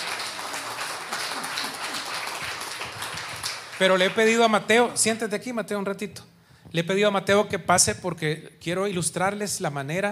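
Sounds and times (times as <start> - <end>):
crowd applauding: 0.0 - 4.8
speech: 3.8 - 10.1.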